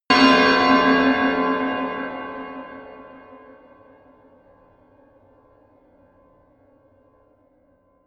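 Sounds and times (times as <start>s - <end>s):
horror bell hits: 0.1s - 3.3s.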